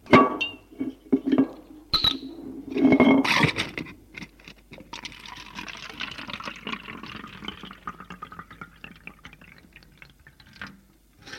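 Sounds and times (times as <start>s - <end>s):
glass clinks and knocks while pouring bourbon: 0.1s - 0.6s, 1.4s - 3.4s
bourbon being poured into a glass: 4.9s - 10.8s.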